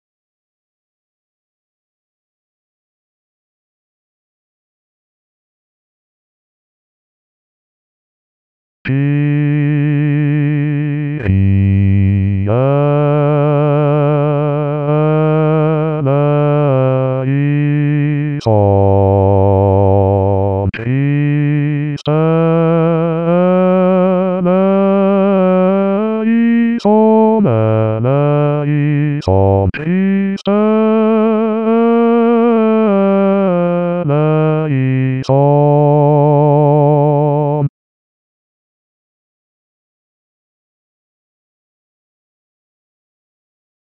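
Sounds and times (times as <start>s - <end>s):
bass voices singing alone: 8.9s - 37.7s.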